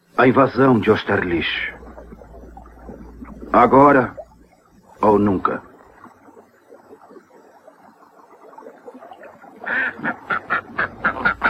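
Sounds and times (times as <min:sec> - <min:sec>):
speech: 0:00.2 - 0:01.8, 0:03.5 - 0:04.2, 0:05.0 - 0:05.7
duck quacking: 0:09.7 - 0:11.4.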